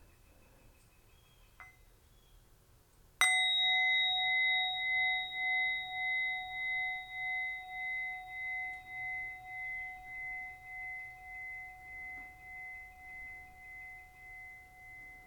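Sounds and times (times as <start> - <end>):
meditation bell ringing: 3.2 - 15.2.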